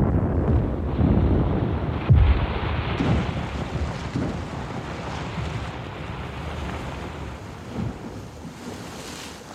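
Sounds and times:
muffled deep underwater explosion in the Balta near a rocky shore: 0.0s - 5.5s
wind: 0.0s - 9.5s
surging water: 0.7s - 9.5s.

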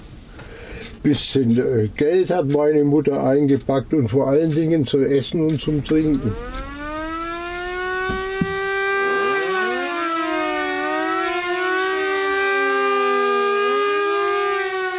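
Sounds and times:
speech: 1.0s - 6.6s
rooftop air raid sirens wailing: 5.8s - 14.9s.

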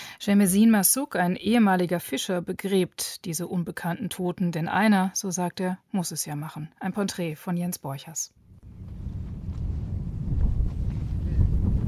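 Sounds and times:
speech: 0.2s - 8.4s
rough wind from the sea buffeting microphone over a sandy landscape: 8.5s - 11.8s.

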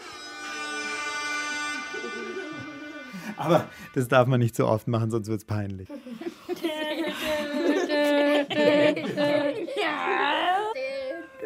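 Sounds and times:
party horn blaring a long buzzy tone: 0.0s - 4.1s
laughter: 1.8s - 3.7s, 5.9s - 10.5s
speech: 3.4s - 6.0s.

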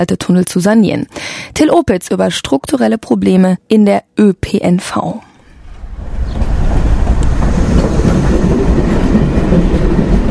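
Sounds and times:
speech: 0.0s - 5.3s
crowded moving commuter train rumbling heard from inside a carriage: 5.6s - 10.2s.

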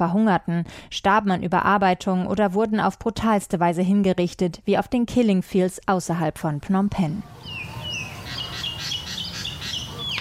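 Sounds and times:
speech: 0.0s - 7.6s
birds chirping and tweeting outdoors: 7.2s - 10.1s.

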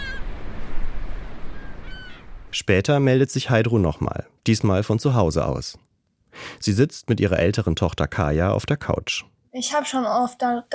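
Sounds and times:
resting birds giving faint honking calls: 0.0s - 2.5s
speech: 2.5s - 10.7s.

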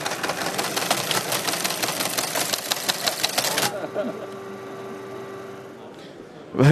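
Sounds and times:
old 1960s teleprinter clattering while printing a text message: 0.0s - 4.4s
laughter: 3.4s - 4.9s, 6.4s - 6.6s.

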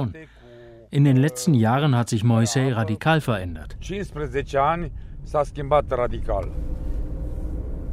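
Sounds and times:
speech: 0.0s - 6.8s
car engine rumble heard from inside a car driving along a village main street: 3.0s - 7.9s.

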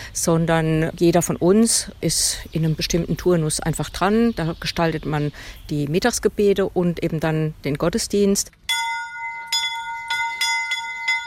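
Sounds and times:
speech: 0.2s - 8.8s
tower bell rung by pulling rope tolling: 8.7s - 11.2s.

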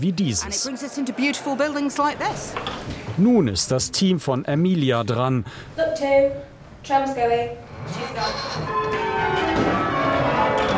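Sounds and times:
speech: 0.0s - 9.7s
church bells rung by hand by a team with ropes: 8.7s - 10.7s.

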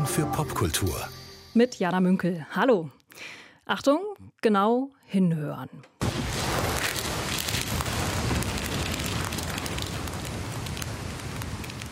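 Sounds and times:
speech: 0.1s - 6.2s
dense crackling forest ambience from installation: 6.0s - 11.9s.

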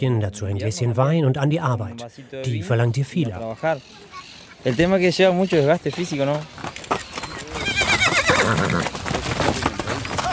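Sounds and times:
speech: 0.0s - 7.0s
horse hooves clip-clopping: 3.0s - 10.3s
horse whinnying loudly: 7.3s - 9.0s.

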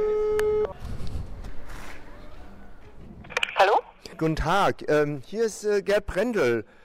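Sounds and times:
steady electronic telephone ringing tone: 0.0s - 0.8s
speech: 3.6s - 6.8s.

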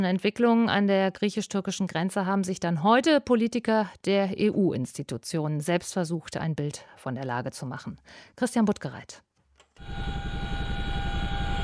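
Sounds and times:
speech: 0.0s - 10.4s
helicopter engine droning over the Greek-Turkish border: 9.8s - 11.6s.

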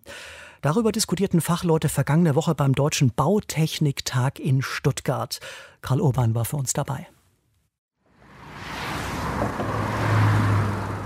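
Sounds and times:
speech: 0.6s - 7.2s
slow truck traffic rumbling on a road bridge: 8.1s - 11.0s.

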